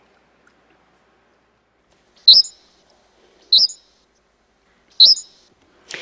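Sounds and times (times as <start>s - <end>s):
bird chirping from a 1987 Hungarian recording: 2.2s - 2.8s, 3.4s - 4.0s, 4.9s - 5.5s.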